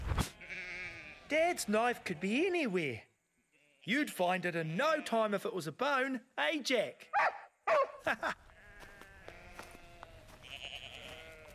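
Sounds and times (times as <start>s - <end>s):
flock of sheep bleating: 0.3s - 2.4s, 3.4s - 4.0s, 8.5s - 11.5s
speech: 1.3s - 3.1s, 3.8s - 8.4s
laughter: 8.0s - 8.5s.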